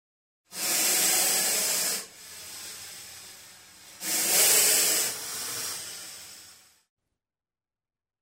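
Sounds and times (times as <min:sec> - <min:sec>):
snake hissing: 0:00.5 - 0:06.8.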